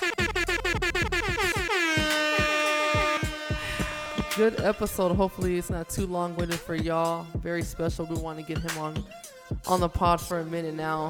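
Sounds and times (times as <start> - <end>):
air horn sound effect blasts: 0.0 - 5.2
speech: 4.4 - 11.0.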